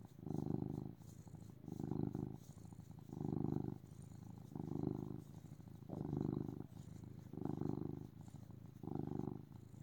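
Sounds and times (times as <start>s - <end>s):
cat purring: 0.0s - 9.8s
low steady background: 0.0s - 9.8s.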